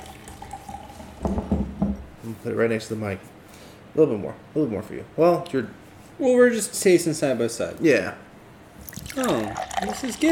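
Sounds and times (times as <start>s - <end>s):
nitro drink poured straight down into a glass on a table: 0.0s - 1.4s, 8.8s - 10.2s
speech: 2.3s - 3.4s, 4.0s - 8.3s, 9.2s - 10.2s.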